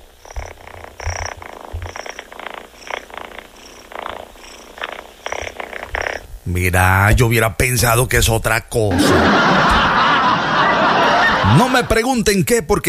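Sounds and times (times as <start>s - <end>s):
cat purring: 0.0s - 7.4s
speech: 6.5s - 9.9s, 11.5s - 12.8s
laughter: 8.9s - 12.1s.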